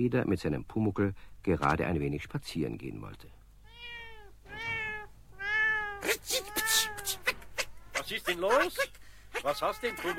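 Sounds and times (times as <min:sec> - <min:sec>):
speech: 0:00.0 - 0:03.4, 0:08.1 - 0:10.1
black cat with two white paws meowing: 0:03.6 - 0:08.0, 0:09.3 - 0:10.1.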